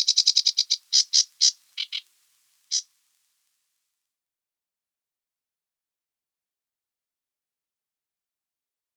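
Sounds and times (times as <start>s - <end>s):
sedge warbler song: 0.0s - 2.9s.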